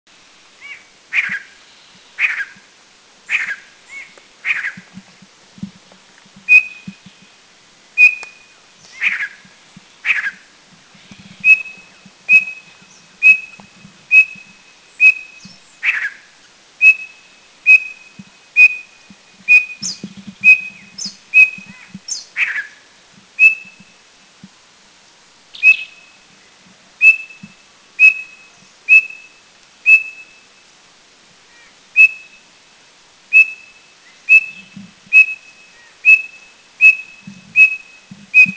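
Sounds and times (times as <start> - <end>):
Giant Nuthatch calling at Doi Chiang Dao in Thailand: 0.6 - 2.6, 3.3 - 5.0, 6.5 - 7.3, 8.0 - 9.4, 10.0 - 22.8, 23.4 - 23.9, 25.5 - 26.2, 27.0 - 30.5, 31.5 - 32.5, 33.3 - 38.5.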